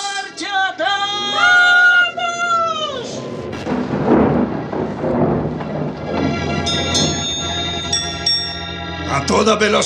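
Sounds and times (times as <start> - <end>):
deep rumbling thunder at dusk: 0.3 - 8.5
constant roar of wind and rain at dusk: 0.8 - 7.9
bright tonal ringing sounds: 6.0 - 9.3
speech: 9.4 - 9.8.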